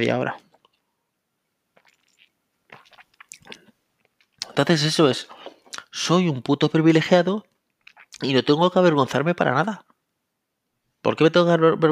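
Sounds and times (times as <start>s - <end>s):
speech: 0.0s - 0.5s, 4.6s - 5.4s, 6.0s - 7.5s, 8.2s - 9.9s, 11.0s - 11.8s
person sipping water: 1.7s - 4.6s, 5.2s - 5.9s, 7.7s - 8.2s
soft wet mouth clicks and swallows: 1.7s - 4.6s, 5.3s - 5.9s, 7.7s - 8.2s.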